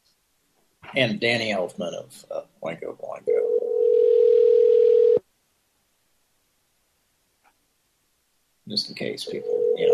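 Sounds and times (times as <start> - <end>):
speech: 0.9 - 3.6, 8.7 - 9.9
telephone dial tone: 3.4 - 5.2, 9.5 - 9.9.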